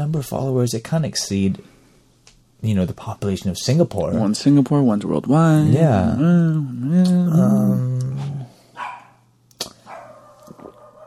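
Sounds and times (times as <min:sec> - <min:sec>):
speech: 0:00.0 - 0:01.8, 0:02.6 - 0:08.4
dog barking: 0:08.8 - 0:11.0.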